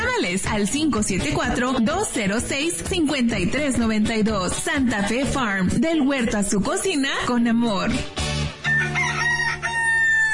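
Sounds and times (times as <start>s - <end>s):
speech: 0.2s - 8.2s
rooster crowing: 8.6s - 10.3s.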